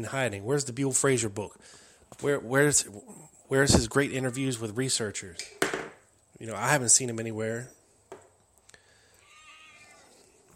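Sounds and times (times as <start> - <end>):
speech: 0.0 - 5.8, 6.4 - 7.8
cat meowing: 9.2 - 10.2.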